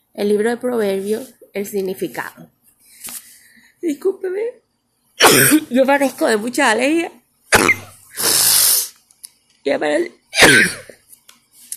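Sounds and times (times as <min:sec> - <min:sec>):
speech: 0:00.2 - 0:02.5, 0:03.8 - 0:04.6, 0:05.2 - 0:07.8, 0:09.6 - 0:11.0
loud sneeze: 0:05.2 - 0:05.7, 0:07.5 - 0:08.9, 0:10.4 - 0:10.9.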